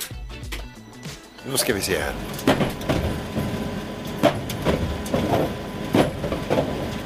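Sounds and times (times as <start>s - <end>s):
speech: 1.4s - 3.2s
tumble dryer steady low rumble: 1.4s - 7.0s
tumble dryer load thumping and knocking as it tumbles: 2.1s - 7.0s.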